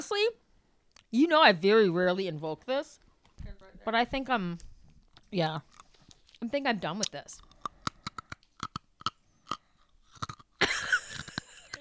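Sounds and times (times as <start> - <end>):
speech: 0.0 - 0.4, 1.1 - 3.0, 3.8 - 4.7, 5.3 - 5.7, 6.4 - 7.5
crunchy crisp snack being chewed: 5.0 - 6.4, 7.0 - 11.7.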